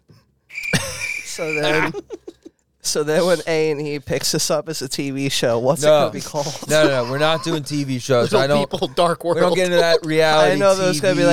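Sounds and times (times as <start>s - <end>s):
crickets chirping in a steady high trill: 0.5s - 2.0s
laughter: 0.6s - 2.5s, 6.1s - 11.3s
speech: 1.4s - 2.2s, 2.8s - 11.3s.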